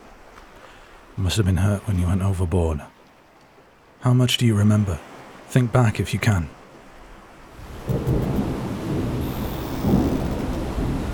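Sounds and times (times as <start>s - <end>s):
speech: 1.2s - 3.0s, 4.0s - 6.6s
steady hissing rain at sea: 7.5s - 11.1s
deep rolling thunder at sea: 7.6s - 11.1s.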